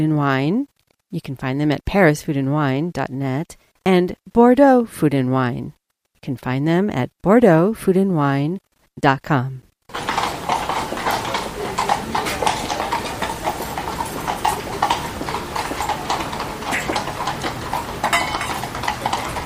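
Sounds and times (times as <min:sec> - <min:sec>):
speech: 0:00.0 - 0:09.7
faint noise: 0:00.0 - 0:19.4
horse hooves clip-clopping along a hard street: 0:09.9 - 0:19.4.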